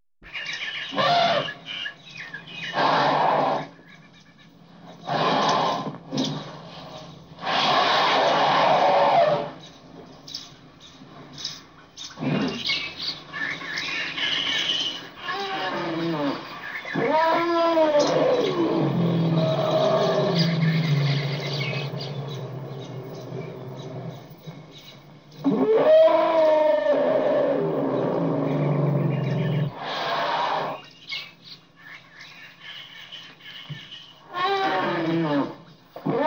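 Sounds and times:
bird ambience: 0:00.2 - 0:36.2
elephant trumpeting: 0:00.9 - 0:01.7, 0:02.6 - 0:03.8, 0:04.9 - 0:09.6, 0:14.3 - 0:24.4, 0:25.4 - 0:30.9, 0:34.2 - 0:36.2.

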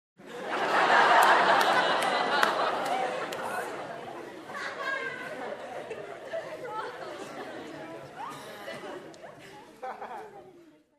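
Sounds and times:
group laughing: 0:00.2 - 0:10.6
group minimal claps: 0:00.5 - 0:04.1.

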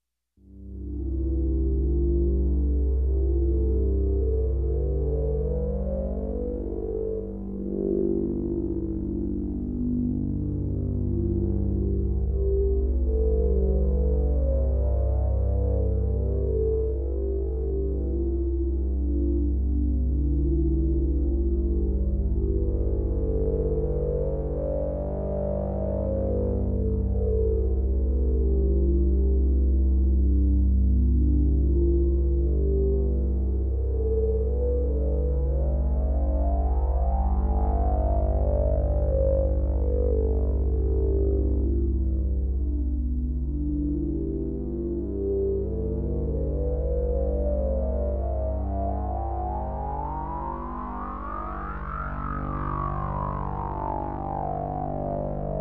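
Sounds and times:
dark harmonic sweep synth pad: 0:00.5 - 0:55.5.

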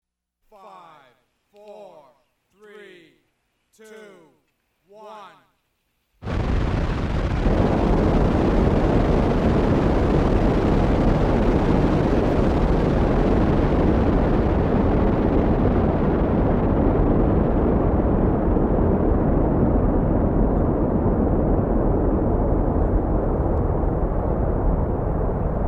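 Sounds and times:
person counting down: 0:00.4 - 0:05.6
rocket taking off: 0:06.2 - 0:25.6.

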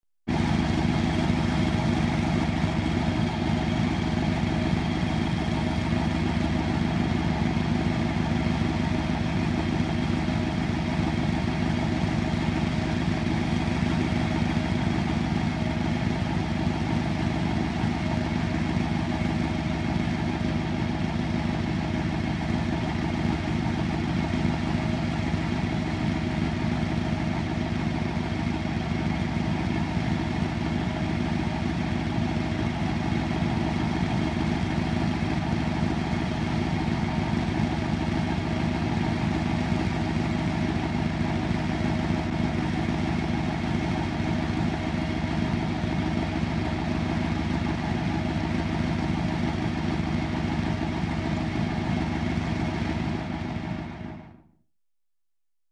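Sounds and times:
farm truck engine idling: 0:00.3 - 0:54.4.

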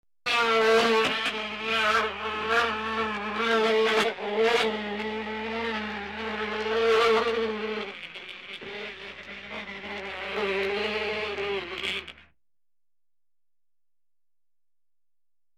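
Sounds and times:
bee buzzing in container: 0:00.3 - 0:12.4.

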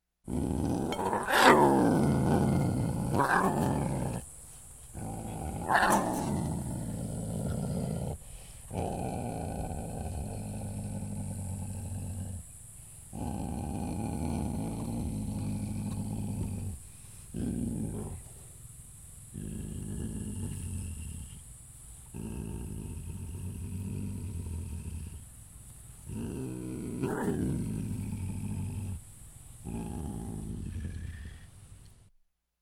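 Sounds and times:
wildcat hissing menacingly: 0:00.3 - 0:18.6, 0:19.3 - 0:25.3, 0:26.0 - 0:31.7.

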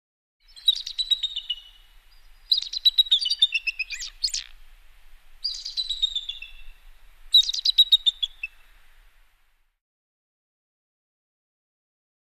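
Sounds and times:
bird chirping: 0:00.4 - 0:04.6, 0:05.4 - 0:08.7.

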